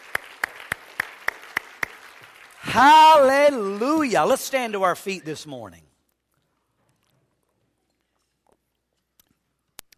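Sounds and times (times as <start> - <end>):
audience clapping in unison: 0.0 - 5.0
speech: 2.8 - 5.9.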